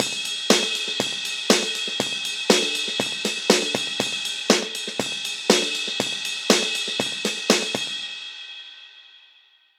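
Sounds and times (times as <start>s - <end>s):
high-pass filtered drum loop: 0.0s - 8.0s.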